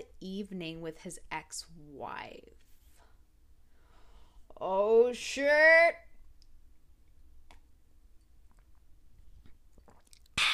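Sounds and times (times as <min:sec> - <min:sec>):
speech: 0:00.2 - 0:02.7, 0:04.6 - 0:06.1
person gulping water: 0:08.4 - 0:10.5.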